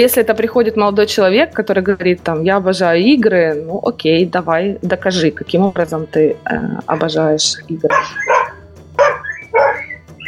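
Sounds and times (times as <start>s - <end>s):
speech: 0.0s - 8.5s
dog barking: 7.9s - 10.2s.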